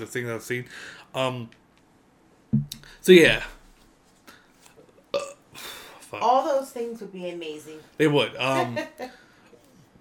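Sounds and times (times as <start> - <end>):
speech: 0.0 - 1.6, 2.5 - 3.6, 6.1 - 9.2
person burping: 5.1 - 5.5.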